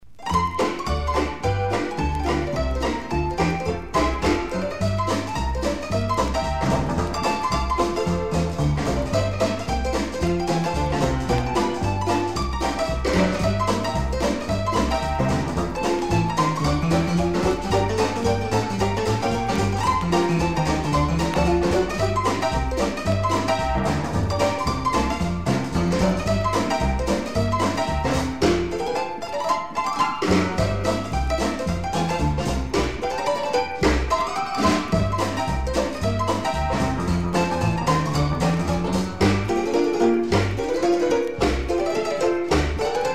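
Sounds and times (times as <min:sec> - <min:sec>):
old blues piano roll music: 0:00.0 - 0:43.1.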